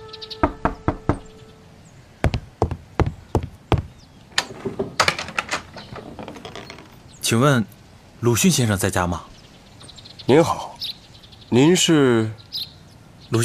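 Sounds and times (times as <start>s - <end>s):
sharp knocks on a door: 0.4s - 1.3s, 2.2s - 5.4s
speech: 7.3s - 9.3s, 10.3s - 10.7s, 11.5s - 12.4s.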